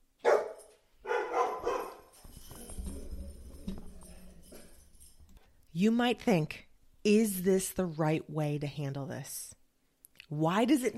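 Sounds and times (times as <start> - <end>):
dog barking: 0.2 - 2.1
speech: 5.8 - 9.6, 10.3 - 10.9.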